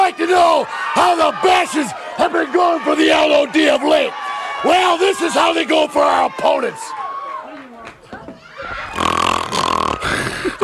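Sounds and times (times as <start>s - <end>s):
speech: 0.1s - 7.1s
laughter: 8.5s - 10.6s
voice imitating loud exaggerated snoring: 9.0s - 10.3s.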